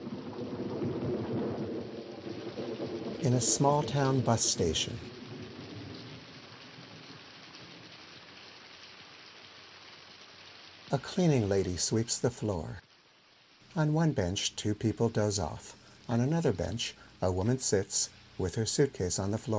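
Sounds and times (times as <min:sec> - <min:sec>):
low thunder rumbles: 0:00.0 - 0:08.0
heavy rain on a stormy night: 0:00.0 - 0:19.5
speech: 0:03.2 - 0:05.1, 0:10.9 - 0:12.8, 0:13.8 - 0:19.5.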